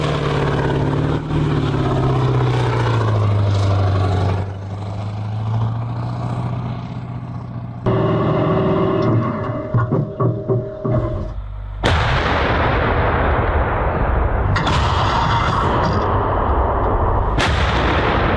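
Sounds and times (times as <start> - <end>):
vehicle engine idling: 0.0 - 12.0
self-propelled artillery gun firing: 11.8 - 18.3.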